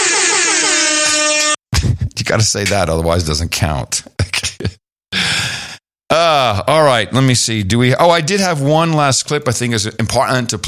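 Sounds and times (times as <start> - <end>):
loud sustained air horn blast: 0.0 - 1.6
speech: 2.3 - 4.8, 6.1 - 10.6.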